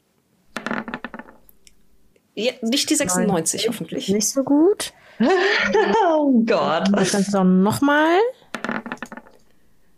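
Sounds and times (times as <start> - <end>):
speech: 2.4 - 8.4
laughter: 5.2 - 7.3
dice rattling across a hard table: 8.6 - 9.4.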